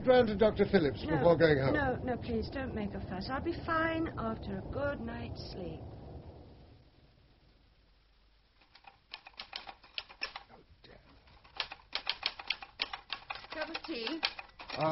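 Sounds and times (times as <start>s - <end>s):
speech: 0.1s - 6.0s, 13.7s - 14.9s
rapid typing keystrokes: 8.6s - 10.4s, 11.4s - 14.9s.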